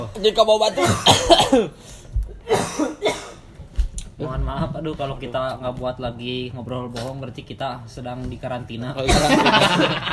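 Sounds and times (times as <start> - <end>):
speech: 0.1 - 3.1, 4.2 - 10.1
person coughing harshly: 0.7 - 1.8, 2.4 - 3.5
laughter: 9.1 - 10.1.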